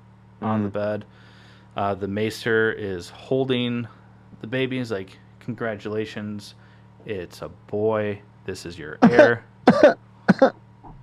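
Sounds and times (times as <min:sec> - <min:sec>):
speech: 0:00.4 - 0:10.6
person coughing: 0:09.0 - 0:10.6.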